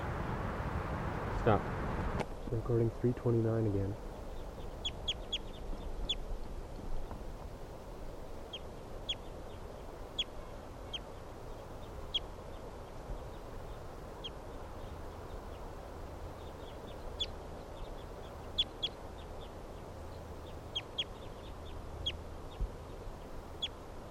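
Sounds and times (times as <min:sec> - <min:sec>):
low outdoor rumble: 0:00.0 - 0:24.1
speech: 0:01.4 - 0:01.7, 0:02.5 - 0:04.1
bird chirps: 0:04.3 - 0:06.3, 0:08.5 - 0:24.1.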